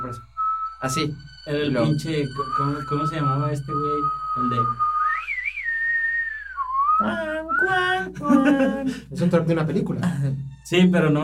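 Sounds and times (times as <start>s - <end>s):
person whistling a short simple tune: 0.0s - 8.2s
brief burst of voiced harmonic sound: 0.0s - 9.5s
speech: 0.1s - 4.9s, 7.0s - 11.2s
laughter: 7.9s - 9.1s.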